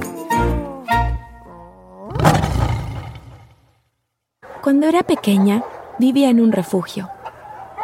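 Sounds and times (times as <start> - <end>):
female dog whining: 0.2 - 2.1
female dog roaring like a lion: 1.5 - 3.7
speech: 4.7 - 7.2.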